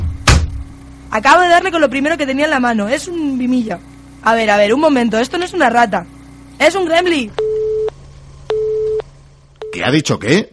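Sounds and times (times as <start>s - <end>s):
low hum: 0.0s - 10.5s
speech: 1.2s - 7.4s, 9.8s - 10.5s
telephone busy signal from a malfunctioning telephone: 7.3s - 9.0s, 9.6s - 9.9s.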